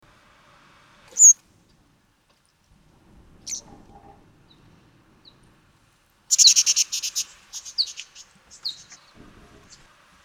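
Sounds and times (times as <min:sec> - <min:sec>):
orange-bellied parrot Neophema chrysogaster chirping: 0:01.1 - 0:01.4, 0:06.3 - 0:09.0.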